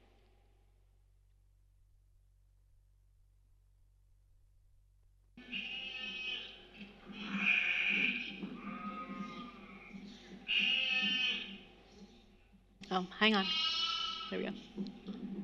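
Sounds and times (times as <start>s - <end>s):
sheep bleating in a played video clip: 5.4s - 11.6s, 13.3s - 14.6s
speech: 13.0s - 13.7s, 14.3s - 15.0s.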